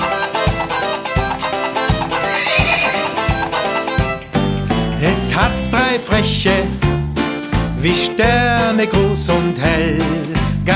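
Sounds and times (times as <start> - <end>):
children's song with a galloping beat: 0.0 - 10.7
pony whinnying: 1.2 - 4.2
speech: 5.0 - 6.8, 7.8 - 10.7.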